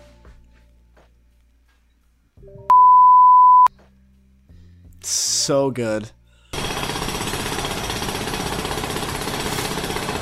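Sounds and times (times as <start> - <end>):
speech: 2.4 - 2.9, 5.0 - 6.2
jackhammer pounding outside: 6.5 - 10.1.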